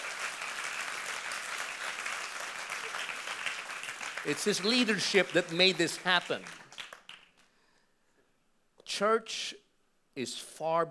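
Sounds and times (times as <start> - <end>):
audience applause at a church service: 0.0 - 7.3
speech: 4.2 - 6.6, 9.0 - 9.6, 10.2 - 10.8.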